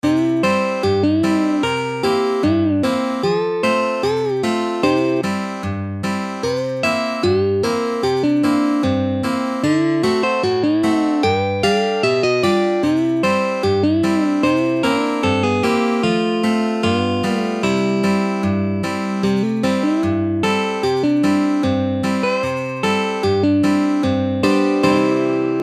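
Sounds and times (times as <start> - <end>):
country guitar solo with bending licks: 0.0 - 25.6.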